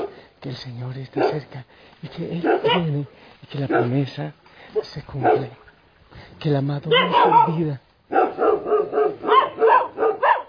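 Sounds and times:
dog barking: 0:00.0 - 0:00.2, 0:01.1 - 0:01.5, 0:02.3 - 0:03.0, 0:03.6 - 0:04.1, 0:04.7 - 0:05.6, 0:06.9 - 0:10.4
speech: 0:00.4 - 0:08.2.

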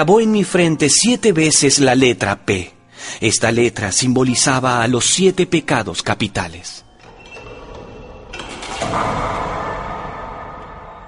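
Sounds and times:
speech: 0:00.0 - 0:06.8
heavy door creaking open: 0:06.9 - 0:11.0.

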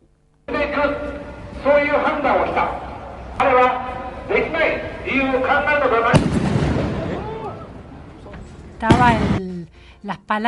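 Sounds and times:
crowd commotion: 0:00.5 - 0:09.4
speech: 0:00.6 - 0:02.8, 0:03.4 - 0:06.5, 0:08.8 - 0:10.4
gunshots: 0:06.1 - 0:07.3, 0:08.8 - 0:09.4.

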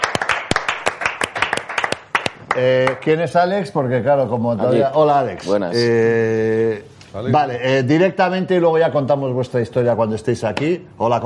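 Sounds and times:
audience applause welcoming two guests: 0:00.0 - 0:03.0
speech: 0:02.6 - 0:11.2.

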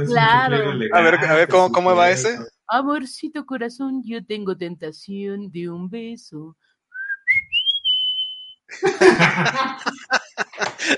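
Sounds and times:
laughter: 0:00.0 - 0:02.4, 0:08.7 - 0:10.9
speech: 0:00.0 - 0:06.7, 0:08.7 - 0:10.9
person whistling a love-song melody: 0:07.0 - 0:08.6.

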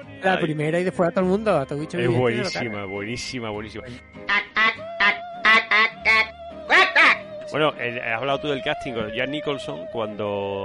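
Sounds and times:
speech: 0:00.2 - 0:04.5, 0:07.5 - 0:10.6
harsh nasal duck-like alien voice squawks: 0:04.3 - 0:07.2.

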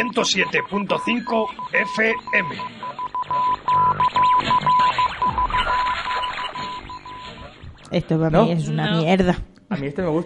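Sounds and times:
speech: 0:00.0 - 0:06.3, 0:07.9 - 0:10.2
short high electronic radio time signal beeps: 0:00.0 - 0:07.8
dense busy broadcast background: 0:00.0 - 0:10.2.

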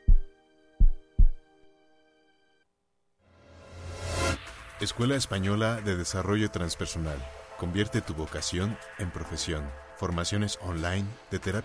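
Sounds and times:
deep booming heartbeat thumps: 0:00.0 - 0:01.4
speech: 0:04.8 - 0:11.6.

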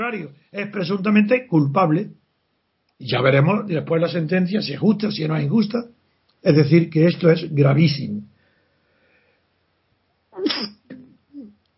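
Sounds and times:
speech: 0:00.0 - 0:02.2, 0:03.0 - 0:08.3
person sneezing: 0:10.4 - 0:11.5.

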